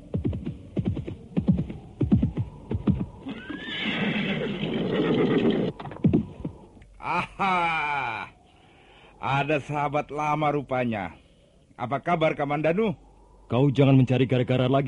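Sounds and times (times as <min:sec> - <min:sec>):
horse galloping hoofbeats: 0:00.0 - 0:03.1
horse neighing: 0:03.2 - 0:05.8
speech: 0:07.1 - 0:07.9, 0:09.4 - 0:11.2, 0:11.8 - 0:14.8.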